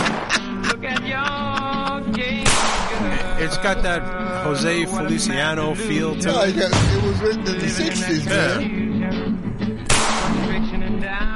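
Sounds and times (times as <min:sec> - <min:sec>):
laughter: 0:00.0 - 0:08.6
recorded music with steady tones: 0:00.0 - 0:11.3
loud sharp gunshot sound effect: 0:02.4 - 0:03.1, 0:06.7 - 0:07.3, 0:09.9 - 0:10.6
speech: 0:03.4 - 0:09.2.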